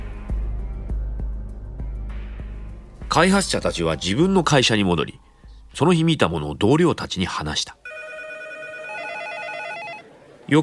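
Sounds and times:
speech: 0:03.1 - 0:05.2, 0:05.8 - 0:07.8, 0:10.5 - 0:10.6
telephone ringing with a bright electronic warbling tone: 0:07.8 - 0:10.1.

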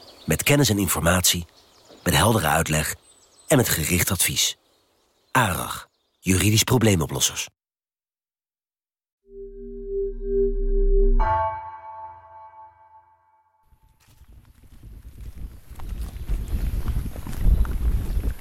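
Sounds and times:
speech: 0:00.3 - 0:04.6, 0:05.3 - 0:07.6
bright electronic tone: 0:09.3 - 0:13.4
crunching rustling footsteps of a person walking over rough uneven terrain outdoors: 0:13.9 - 0:18.4.

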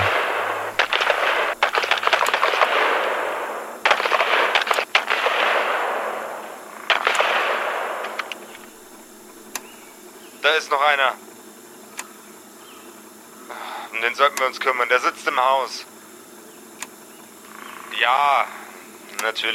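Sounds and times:
bursts of gunfire on a tape recording: 0:00.0 - 0:09.3
rushing hissing background of a tape recording: 0:00.0 - 0:19.5
speech: 0:10.6 - 0:11.2, 0:14.0 - 0:16.0, 0:18.0 - 0:18.6, 0:19.2 - 0:19.5.

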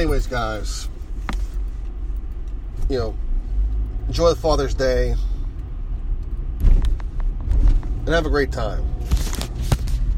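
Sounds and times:
speech: 0:00.0 - 0:00.9, 0:02.9 - 0:03.2, 0:04.1 - 0:05.3, 0:08.1 - 0:09.2
car engine rumbling and revving: 0:00.0 - 0:10.1.

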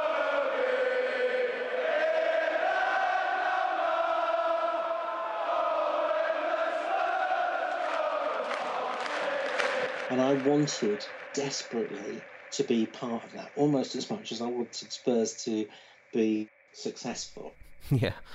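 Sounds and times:
huge stadium crowd singing and roaring: 0:00.0 - 0:13.4
speech: 0:10.1 - 0:18.3.

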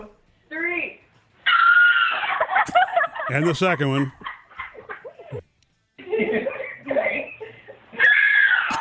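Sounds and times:
woman screaming in surprise: 0:01.4 - 0:02.3, 0:08.0 - 0:08.7
laughter: 0:02.1 - 0:03.4, 0:04.1 - 0:05.4, 0:06.0 - 0:08.7
speech: 0:03.3 - 0:04.2.

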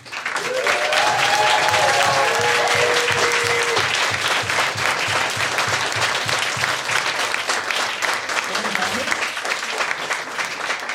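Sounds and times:
live crowd applause: 0:00.0 - 0:10.9
whoops and shouts: 0:00.4 - 0:03.9.

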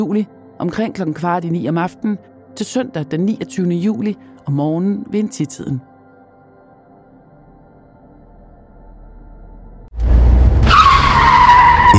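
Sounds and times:
speech: 0:00.0 - 0:05.9
car tires skidding as car veers aside: 0:10.0 - 0:11.9.

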